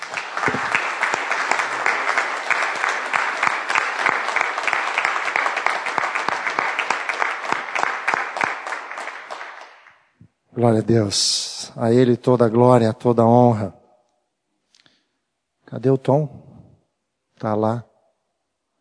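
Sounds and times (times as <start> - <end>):
audience applauding: 0.0 - 10.0
speech: 10.6 - 13.8, 15.7 - 16.4, 17.4 - 17.9.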